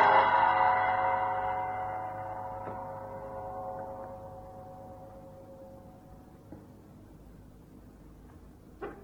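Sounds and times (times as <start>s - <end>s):
gong ringing deep inside a temple: 0.0s - 6.8s.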